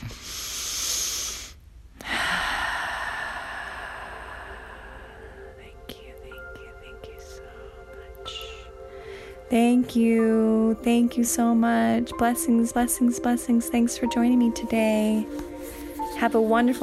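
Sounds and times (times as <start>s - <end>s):
deep breath in and out during a guided meditation: 0.0s - 5.8s, 8.7s - 9.5s
speech: 9.5s - 15.4s, 16.2s - 16.8s.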